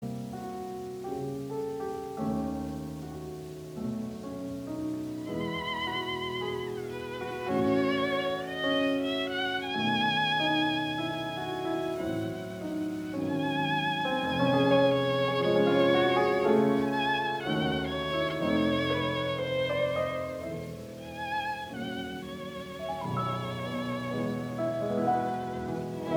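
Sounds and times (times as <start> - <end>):
violin and piano sonata: 0.0 - 26.1.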